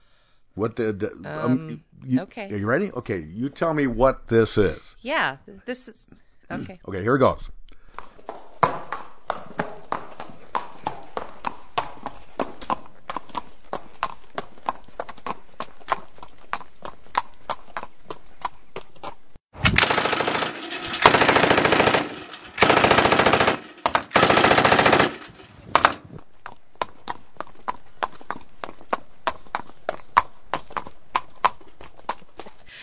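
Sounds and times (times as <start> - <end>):
speech: 0.6 - 7.6
horse hooves clip-clopping on a hard surface: 8.0 - 19.4, 20.1 - 32.7
rapid automatic gunfire: 19.6 - 26.1.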